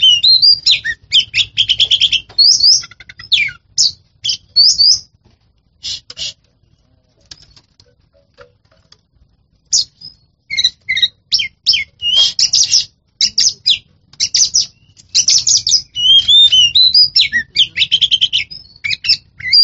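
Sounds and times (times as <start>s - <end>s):
Oriental magpie-robin song: 0.0s - 5.1s, 9.7s - 19.6s.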